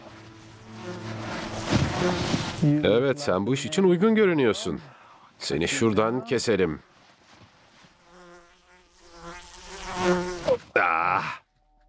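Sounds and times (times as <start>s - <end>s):
fly buzzing close to the ear: 0.0s - 3.2s, 7.7s - 10.7s
speech: 2.0s - 6.9s.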